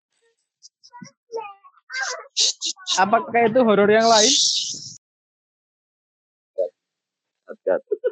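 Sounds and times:
speech: 0.9 - 1.2, 2.4 - 4.8, 7.7 - 8.0
young child's high-pitched voice babbling: 0.9 - 3.0.

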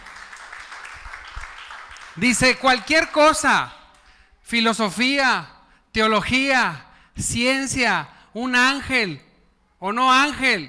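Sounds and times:
crowd applauding: 0.0 - 3.2
speech: 2.2 - 3.8, 4.5 - 10.6.

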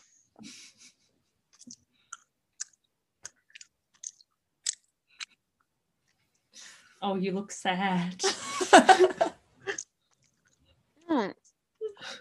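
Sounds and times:
speech: 0.4 - 0.7, 7.0 - 9.3
chewing a hard sour gummy sweet: 1.5 - 5.4.

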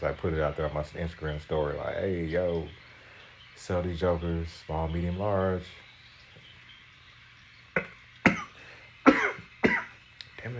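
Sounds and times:
speech: 0.0 - 2.9, 3.6 - 5.8
raspy smoker's cough: 7.8 - 10.0.

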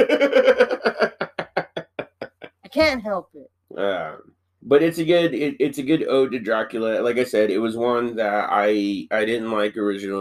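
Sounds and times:
speech: 0.0 - 1.1, 2.8 - 10.2
laughter: 0.0 - 2.5
knocking on a surface: 2.8 - 3.1.

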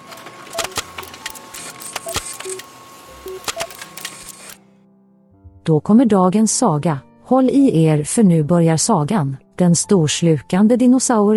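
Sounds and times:
printer printing out a story: 0.0 - 4.6
short steady beeping tones: 0.6 - 4.6
speech: 5.6 - 11.3.

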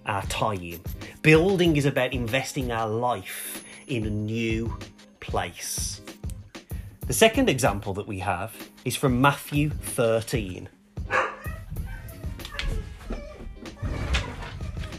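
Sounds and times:
speech: 0.1 - 6.0, 7.1 - 10.8
dog barking: 11.1 - 14.9.

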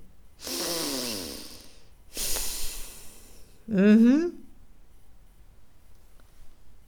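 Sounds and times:
person imitating snoring through the nose: 0.4 - 3.1
speech: 3.7 - 4.4.

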